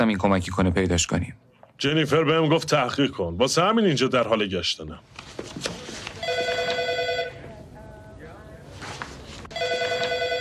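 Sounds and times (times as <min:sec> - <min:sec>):
speech: 0:00.0 - 0:05.8
telephone bell ringing with an electronic trill: 0:06.2 - 0:07.6, 0:09.5 - 0:10.3.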